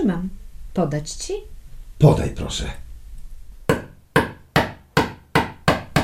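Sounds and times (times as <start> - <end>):
speech: 0.0 - 2.8
hammer striking a nail: 3.7 - 6.0.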